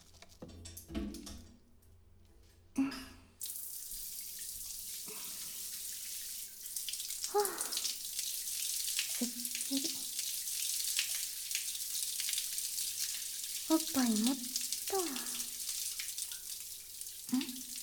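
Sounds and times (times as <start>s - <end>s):
shower water spray hissing: 3.4s - 17.8s
speech: 13.8s - 15.2s.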